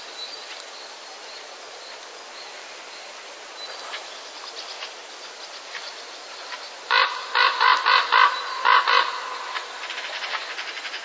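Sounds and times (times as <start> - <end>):
common raven croaking in breeding-season courtship: 6.9 - 11.0.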